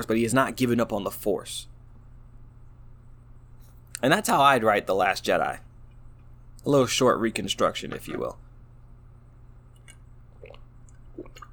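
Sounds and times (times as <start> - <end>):
speech: 0.0 - 1.7, 4.0 - 5.7, 6.6 - 8.4
low hum: 0.0 - 11.5
person sipping water: 9.7 - 11.5.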